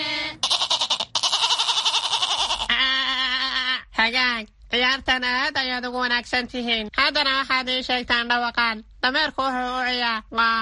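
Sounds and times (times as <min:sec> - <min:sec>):
goat bleating: 0:00.4 - 0:03.7
speech: 0:04.1 - 0:10.6.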